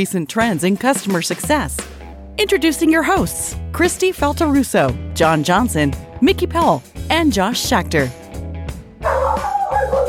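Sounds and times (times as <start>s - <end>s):
speech: 0.0s - 8.2s
dog barking and howling after waking up: 9.0s - 10.0s.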